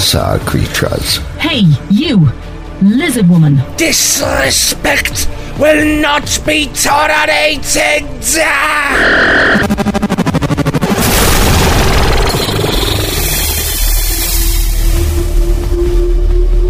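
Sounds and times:
speech: 0.1s - 10.2s
loud pulsing electronic sonic beam: 8.9s - 14.7s
lingering low hum: 9.0s - 16.6s
crystal shattering crash: 10.8s - 15.0s.

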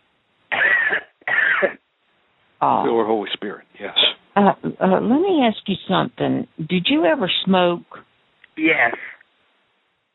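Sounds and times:
heavy forceful deep coughs: 0.5s - 1.8s
speech: 2.6s - 9.1s.

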